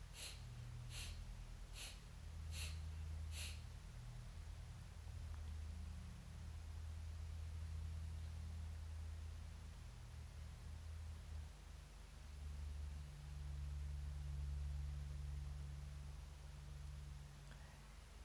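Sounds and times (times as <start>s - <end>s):
breath-of-fire yoga breathing through the nose: 0.0s - 3.6s
faint steady hiss: 0.0s - 18.2s.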